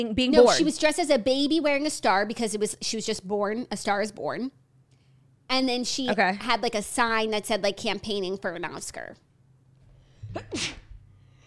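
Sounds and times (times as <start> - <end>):
speech: 0.0 - 4.6, 5.5 - 9.2, 10.3 - 10.8
sneeze: 10.2 - 11.0.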